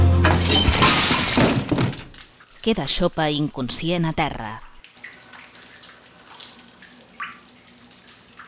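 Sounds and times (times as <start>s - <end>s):
ceramic toilet cistern crashing down in a bathroom: 0.2s - 2.3s
speech: 2.6s - 4.7s
water spilling across a hard floor: 4.8s - 8.4s.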